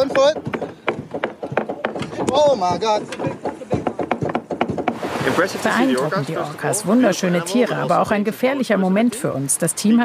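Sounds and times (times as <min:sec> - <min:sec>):
speech: 0:00.0 - 0:00.5, 0:02.3 - 0:03.5, 0:05.3 - 0:10.0
voices talking and exclaiming: 0:00.0 - 0:04.5, 0:05.2 - 0:10.0
rapid knocking on a sailboat hull to deter orcas: 0:00.0 - 0:05.4.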